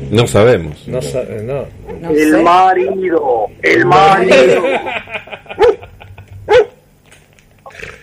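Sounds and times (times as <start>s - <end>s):
speech: 0.1s - 5.7s
murmur of voices: 1.7s - 5.0s
laughter: 4.1s - 6.4s
faint yip: 5.6s - 5.8s, 6.5s - 6.8s
dog barking: 5.6s - 5.9s, 6.5s - 6.8s.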